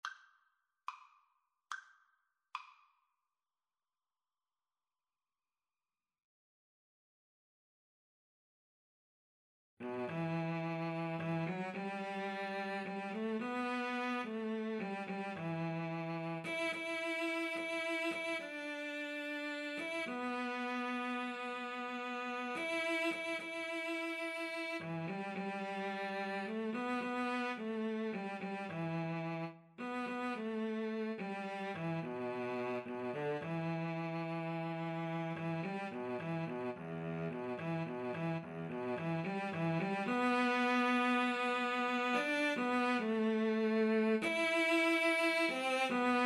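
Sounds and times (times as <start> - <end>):
cello: 9.8 - 46.2.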